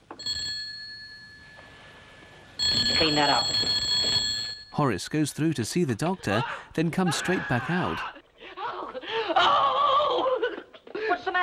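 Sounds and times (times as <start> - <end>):
bell ringing: 0.2 - 5.2
speech: 3.0 - 3.6, 4.8 - 8.2
laughter: 6.0 - 11.1.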